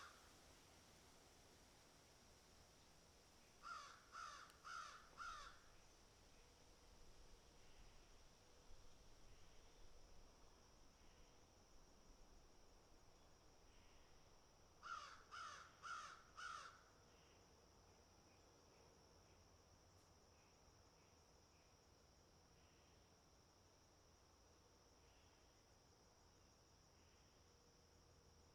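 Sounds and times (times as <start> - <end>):
steady faint high hiss: 0.0 - 15.0
crows cawing harshly: 3.6 - 5.6, 14.8 - 16.8.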